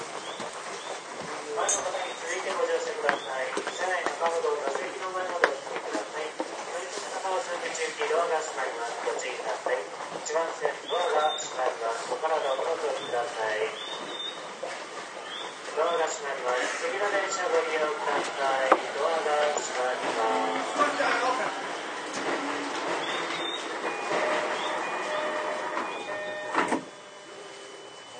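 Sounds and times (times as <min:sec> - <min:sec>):
low steady rumble of a running subway train: 0:00.0 - 0:28.1
people talking aboard a subway train: 0:01.4 - 0:13.9, 0:15.7 - 0:21.7
brief tone: 0:23.1 - 0:28.1.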